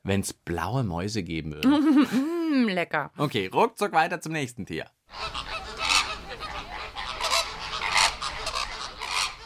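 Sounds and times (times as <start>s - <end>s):
speech: 0.0s - 5.4s
laughter: 1.6s - 2.5s
flock of flamingos honking and calling: 5.1s - 9.4s.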